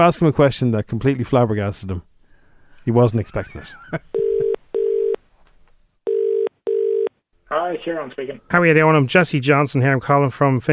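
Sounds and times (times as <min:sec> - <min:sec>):
speech: 0:00.0 - 0:02.1, 0:02.8 - 0:04.2, 0:07.5 - 0:10.7
phone line ringback tone: 0:04.2 - 0:05.2, 0:06.1 - 0:07.1.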